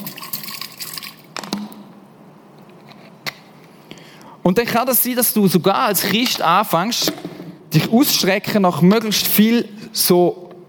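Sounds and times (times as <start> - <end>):
scattered water drips and soft trickles: 0.0 - 1.9
speech: 4.5 - 10.4.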